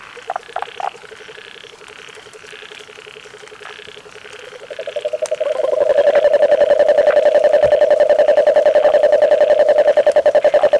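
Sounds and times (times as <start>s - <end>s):
frog giving a rapid pulsed low trill: 4.6s - 10.7s.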